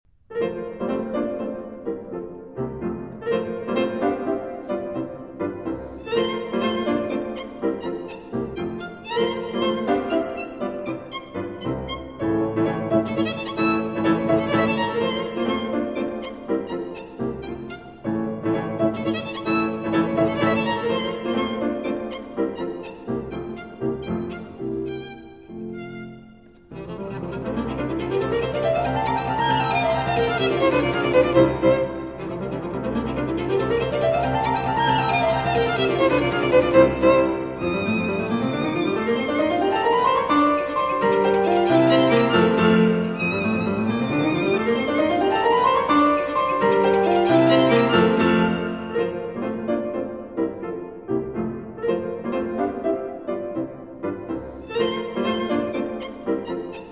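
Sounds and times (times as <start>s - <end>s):
violin and piano sonata in F major: 0.3s - 56.9s.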